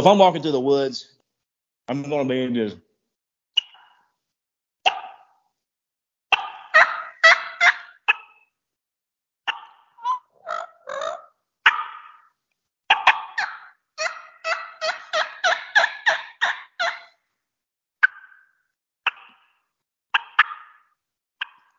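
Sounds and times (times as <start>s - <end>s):
speech: 0.0s - 1.1s, 1.9s - 2.8s
person imitating turkey hen feeding calls on a mouth call: 3.6s - 4.0s, 4.8s - 5.4s, 6.3s - 8.5s, 9.5s - 17.2s, 18.0s - 21.7s.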